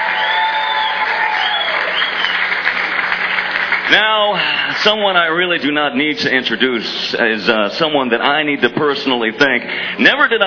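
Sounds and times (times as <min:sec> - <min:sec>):
faint whistles or cheers: 0:00.0 - 0:02.6
sustained applause from a sizable audience: 0:00.0 - 0:04.6
speech: 0:03.9 - 0:10.4.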